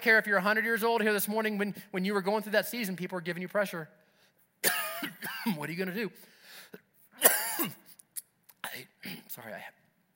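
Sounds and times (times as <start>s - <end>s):
speech: 0.0s - 4.0s, 4.6s - 6.8s, 7.6s - 7.8s, 8.8s - 9.8s
person clearing throat: 4.6s - 5.6s, 7.2s - 7.9s, 8.6s - 9.4s.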